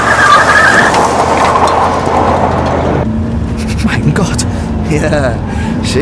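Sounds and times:
high squeal: 0.0s - 2.1s
car engine and road noise driving close to a cliff edge: 0.0s - 5.9s
speech: 5.0s - 5.9s.

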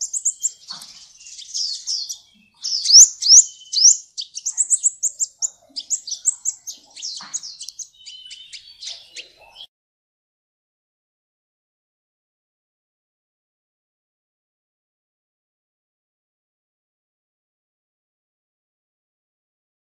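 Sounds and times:
oriental magpie-robin song: 0.0s - 9.7s.

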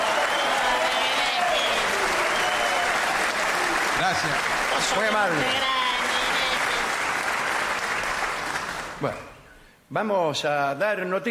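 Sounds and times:
audience ovation with applause: 0.0s - 9.2s
speech: 4.2s - 5.8s, 9.0s - 9.3s, 9.9s - 11.2s.

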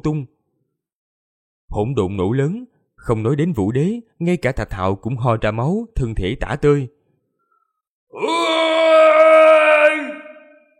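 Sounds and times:
speech: 0.0s - 0.3s, 1.7s - 7.0s, 8.1s - 8.7s
man screaming in anguish: 8.1s - 10.7s.

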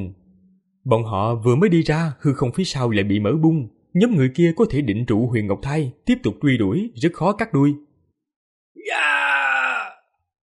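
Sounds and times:
speech: 0.0s - 0.2s, 0.8s - 7.9s
anguished drawn-out human cry of people being killed: 8.8s - 10.1s.

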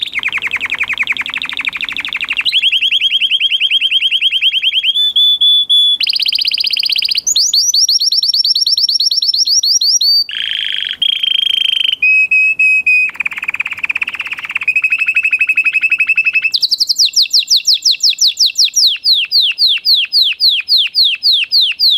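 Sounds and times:
male Belgian canary singing trills: 0.0s - 21.9s.

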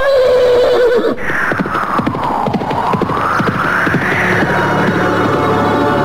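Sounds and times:
horse neighing: 0.2s - 5.4s
clopping hoofbeats: 1.3s - 5.9s.

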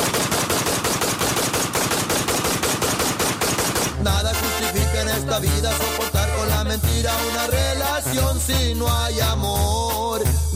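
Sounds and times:
rapid automatic gunfire: 0.0s - 4.8s
speech: 5.3s - 10.5s.

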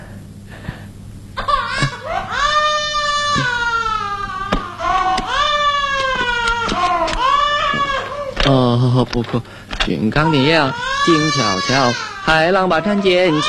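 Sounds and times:
baby crying and refusing to sleep: 1.4s - 8.5s, 10.1s - 13.4s
speech: 9.1s - 13.4s.

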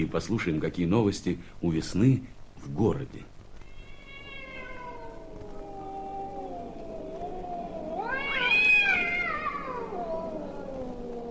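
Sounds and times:
speech: 0.0s - 3.3s
cats caterwauling on rooftops at night: 3.6s - 11.3s.

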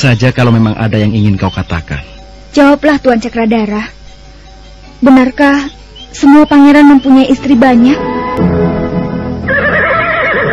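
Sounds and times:
speech: 0.0s - 4.0s, 5.0s - 8.8s
horse neighing while being fed: 9.4s - 10.5s.

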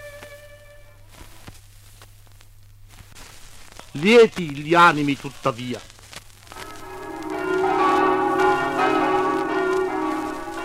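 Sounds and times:
speech: 3.9s - 5.9s
church bells ringing over Osoppo in Friuli announcing Sunday: 6.6s - 10.6s.

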